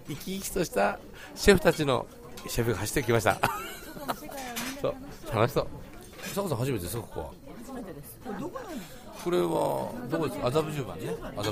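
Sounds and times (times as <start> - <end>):
speech: 0.1 - 11.5
dishes and cutlery clinking in a restaurant: 1.5 - 5.0, 5.8 - 6.6, 11.3 - 11.5
laughter: 3.3 - 4.5.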